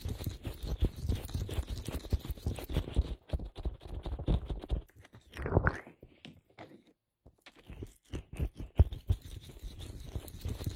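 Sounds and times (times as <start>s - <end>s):
lotion being massaged: 0.0s - 4.9s, 7.5s - 10.7s.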